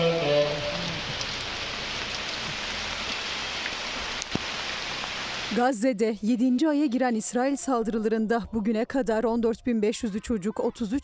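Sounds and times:
steady rain falling on a street in a refugee camp: 0:00.0 - 0:05.6
speech: 0:05.5 - 0:11.0.

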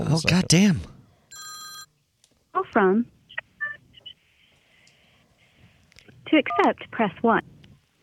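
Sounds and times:
speech: 0:00.1 - 0:00.9, 0:02.8 - 0:03.2, 0:06.3 - 0:07.5
electronic telephone ring: 0:01.3 - 0:01.9.

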